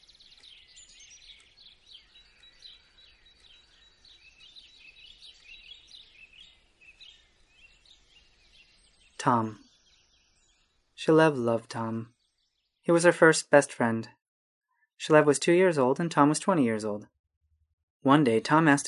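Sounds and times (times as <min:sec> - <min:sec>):
birds chirping and singing: 0:00.0 - 0:13.2
speech: 0:09.2 - 0:09.6, 0:11.0 - 0:12.1, 0:12.8 - 0:14.2, 0:15.0 - 0:17.2, 0:18.0 - 0:18.8.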